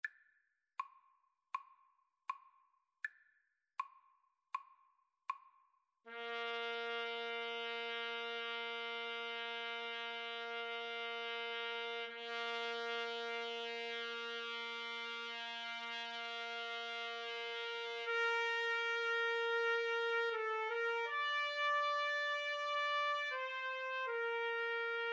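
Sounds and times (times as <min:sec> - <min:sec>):
trumpet duet: 0:06.1 - 0:25.1.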